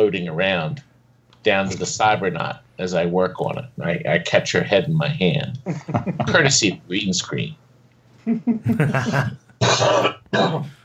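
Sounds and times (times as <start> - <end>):
speech: 0.0 - 7.6, 8.2 - 10.8
laughter: 5.6 - 6.4, 8.2 - 9.5
person coughing: 8.7 - 10.8.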